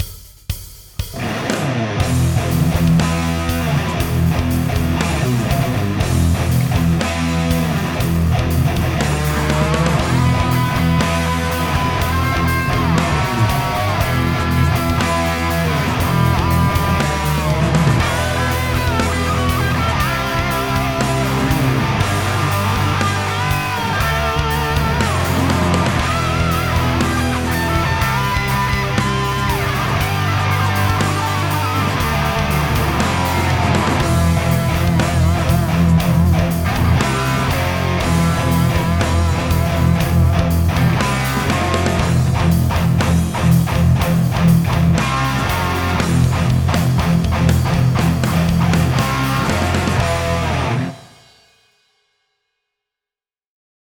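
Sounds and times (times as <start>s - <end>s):
high gain guitar tone: 1.1s - 51.1s.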